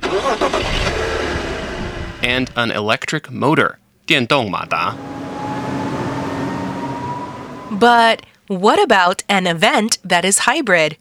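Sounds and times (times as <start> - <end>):
gasoline car engine cranking and starting: 0.0 - 2.2, 4.4 - 8.2
speech: 2.2 - 5.3, 7.8 - 10.9.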